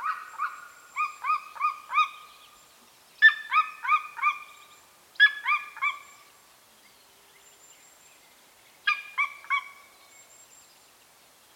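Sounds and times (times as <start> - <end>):
Golden Eagle yelping calls in Bucovina Romania: 0.0 - 2.2, 3.2 - 4.6, 5.2 - 6.1, 8.9 - 9.8.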